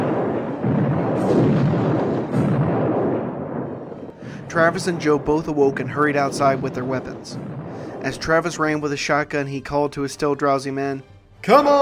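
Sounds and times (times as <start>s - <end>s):
cannon blasts: 0.0s - 9.4s
musket fire: 0.0s - 9.8s
dense continuous battle rumble: 0.0s - 10.0s
speech: 4.5s - 11.8s.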